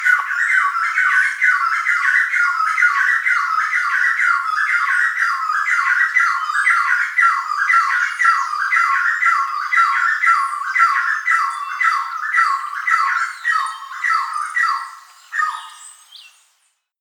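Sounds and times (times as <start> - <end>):
Chestnut Wood Quail calling: 0.0 - 15.8.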